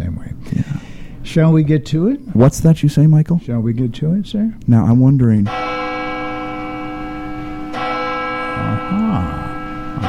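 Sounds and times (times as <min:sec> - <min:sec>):
speech: 0:01.2 - 0:05.6
large bell tolling: 0:05.4 - 0:10.0.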